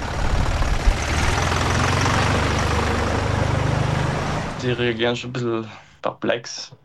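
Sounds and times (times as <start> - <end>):
tractor engine running with a throbbing idle on a promenade in Meran: 0.0 - 5.2
speech: 4.7 - 6.8.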